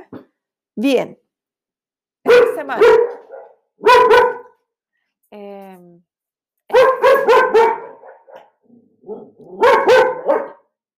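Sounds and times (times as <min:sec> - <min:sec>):
speech: 0:00.8 - 0:01.2, 0:02.6 - 0:03.2, 0:05.3 - 0:06.1
dogs barking at people passing outside: 0:02.3 - 0:04.6, 0:06.7 - 0:10.7.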